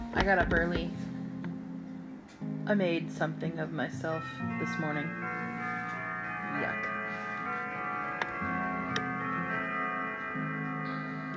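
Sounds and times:
speech: 0:00.2 - 0:01.1, 0:02.7 - 0:05.4, 0:06.5 - 0:06.9
clocks ticking: 0:04.5 - 0:11.3.

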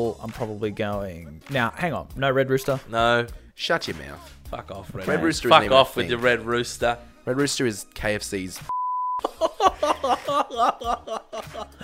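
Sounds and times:
speech: 0:00.0 - 0:11.8
censor bleep tone: 0:08.7 - 0:09.2
laughter: 0:09.2 - 0:11.8.

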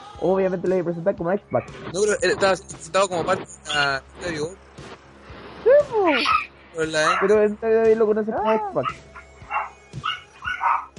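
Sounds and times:
speech: 0:00.2 - 0:04.7, 0:05.8 - 0:09.1
dog barking: 0:06.2 - 0:07.4, 0:08.4 - 0:10.9.

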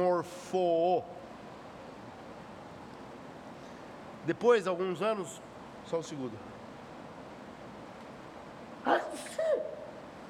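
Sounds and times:
speech: 0:00.0 - 0:01.2, 0:04.2 - 0:06.6
person sneezing: 0:09.0 - 0:09.9.

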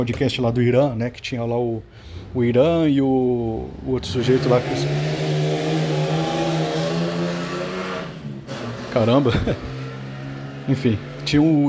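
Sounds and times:
speech: 0:00.0 - 0:05.2, 0:09.0 - 0:09.7, 0:10.7 - 0:11.6
car engine revving as it passes by: 0:03.2 - 0:11.6
laughter: 0:09.2 - 0:09.8.

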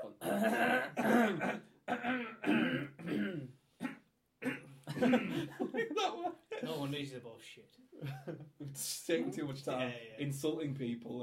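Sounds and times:
rough voiced throat clearing: 0:00.2 - 0:05.4
speech: 0:00.4 - 0:01.6, 0:06.9 - 0:11.2
laughter: 0:04.9 - 0:06.9.

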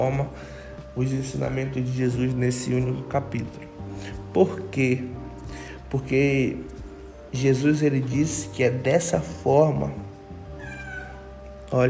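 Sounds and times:
speech: 0:00.0 - 0:06.7, 0:07.3 - 0:10.0
cat meowing with a slightly falling pitch: 0:10.6 - 0:11.5.

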